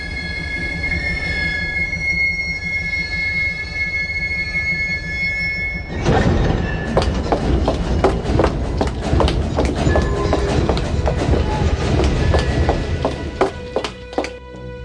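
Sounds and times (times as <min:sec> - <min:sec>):
Tokyo subway train metallic wheel squeal: 0:00.0 - 0:08.9, 0:09.5 - 0:12.8
Tokyo subway train cars rumbling on rails: 0:00.0 - 0:14.3
subway train wheels clacking over track joints: 0:06.0 - 0:14.3.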